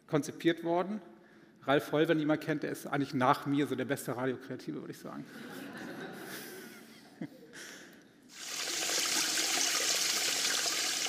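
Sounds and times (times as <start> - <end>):
speech: 0.1 - 5.9
laughter: 5.2 - 7.8
water gushing: 8.3 - 11.0.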